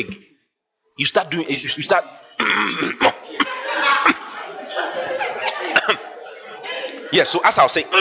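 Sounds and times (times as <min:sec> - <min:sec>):
speech: 0:00.0 - 0:00.3, 0:01.0 - 0:04.2, 0:07.1 - 0:07.9
person clearing throat: 0:02.4 - 0:04.4, 0:05.7 - 0:06.1
person coughing: 0:02.4 - 0:04.4
laughter: 0:02.9 - 0:07.9.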